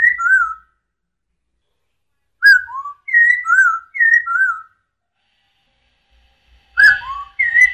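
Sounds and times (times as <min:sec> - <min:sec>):
masked laughingthrush whistling descending two-note phrases during dance display: 0:00.0 - 0:00.7, 0:02.4 - 0:04.7, 0:06.8 - 0:07.7.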